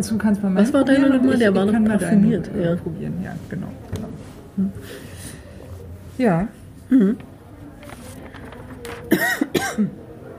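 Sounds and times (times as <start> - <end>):
speech: 0.0 - 5.1, 6.2 - 7.3, 9.1 - 10.0
short rough coughs: 9.1 - 10.0
throaty throat clearing: 9.1 - 10.0.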